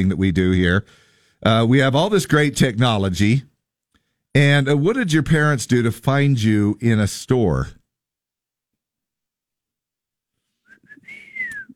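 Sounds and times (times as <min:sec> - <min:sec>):
speech: 0:00.0 - 0:03.5, 0:04.3 - 0:07.8
person whistling loudly through their lips to call a child: 0:10.7 - 0:11.7.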